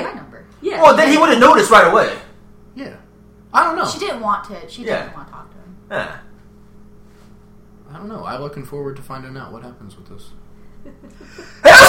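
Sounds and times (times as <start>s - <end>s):
speech: 0.4s - 2.2s, 2.8s - 6.3s, 7.9s - 11.8s
person sneezing: 11.4s - 11.8s.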